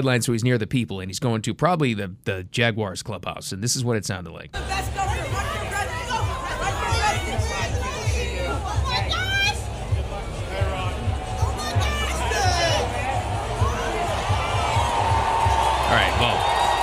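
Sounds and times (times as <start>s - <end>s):
speech: 0.0s - 5.7s
large stadium crowd chatter and hubbub: 4.6s - 16.8s.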